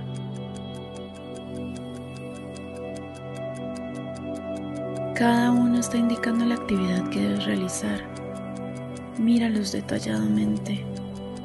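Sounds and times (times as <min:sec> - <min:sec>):
clocks ticking: 0:00.0 - 0:11.4
soft sustained humming drone: 0:00.0 - 0:11.4
speech: 0:05.2 - 0:08.1, 0:09.2 - 0:11.0.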